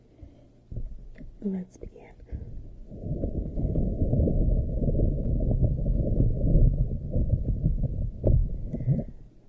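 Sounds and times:
speech: 1.4 - 1.9
ocean waves: 2.3 - 9.4.

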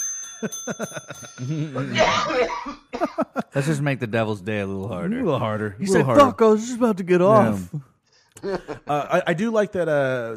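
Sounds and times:
small bell ringing: 0.0 - 2.1
chuckling and voiced sounds: 0.4 - 3.6
speech: 0.4 - 10.3.

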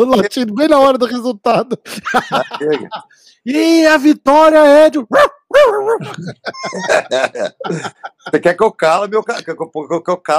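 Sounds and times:
speech: 0.0 - 10.3
laughter: 1.9 - 3.2, 6.0 - 8.6
small dog barking and yipping: 5.2 - 6.0.

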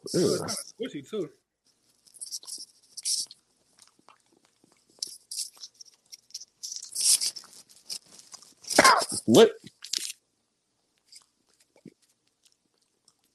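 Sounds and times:
speech: 0.0 - 1.4, 9.3 - 9.6
person chewing cold green beans: 1.9 - 10.2, 11.0 - 13.3.

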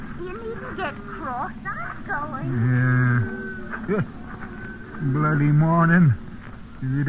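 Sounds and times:
speech: 0.2 - 4.2, 5.0 - 6.2, 6.8 - 7.0
cow that needs milking mooing: 2.4 - 4.0.

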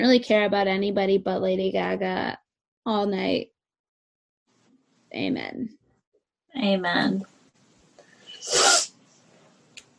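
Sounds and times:
speech: 0.0 - 3.5, 5.1 - 5.8, 6.6 - 7.3
big forceful allergy sniff: 8.1 - 9.0.

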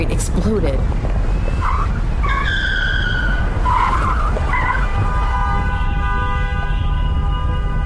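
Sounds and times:
car engine and road noise: 0.0 - 7.8
speech: 0.2 - 1.2
car tires screeching through a sharp right turn down a ramp: 1.0 - 6.2.

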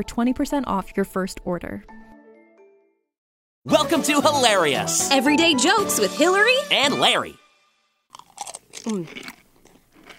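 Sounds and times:
speech: 0.0 - 2.0, 3.6 - 7.4, 8.8 - 9.4
loud crunching while eating a pretzel: 8.1 - 10.1.

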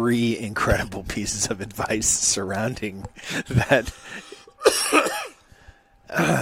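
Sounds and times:
speech: 0.0 - 5.0, 6.1 - 6.4
person coughing after choking on saliva: 4.6 - 5.4, 6.1 - 6.4.

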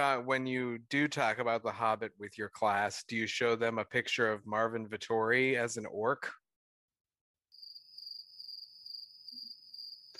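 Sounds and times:
speech: 0.0 - 6.4
cricket chirping sound effect: 7.5 - 10.1.

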